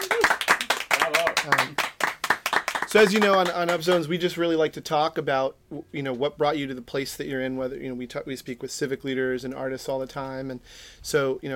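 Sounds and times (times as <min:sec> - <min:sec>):
small live audience clapping: 0:00.0 - 0:04.1
speech: 0:02.9 - 0:11.5.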